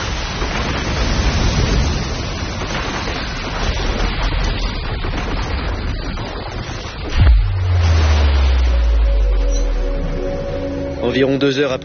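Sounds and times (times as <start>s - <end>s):
heavy crash of a ship breaking apart: 0.0s - 11.1s
raging stormy sea pounding a ship: 0.0s - 11.8s
wind: 0.0s - 11.8s
speech: 11.2s - 11.8s.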